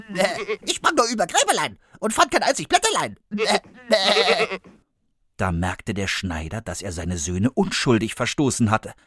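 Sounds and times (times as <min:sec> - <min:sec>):
human voice imitating a goat bleat: 0:00.0 - 0:00.8, 0:03.3 - 0:04.8
speech: 0:00.1 - 0:04.8, 0:05.4 - 0:09.0.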